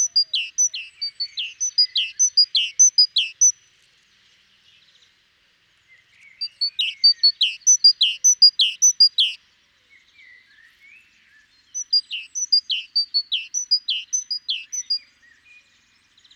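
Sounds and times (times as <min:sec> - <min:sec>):
Great tit producing high chirps with falling tails: 0:00.0 - 0:03.6, 0:06.6 - 0:09.4, 0:11.8 - 0:15.0.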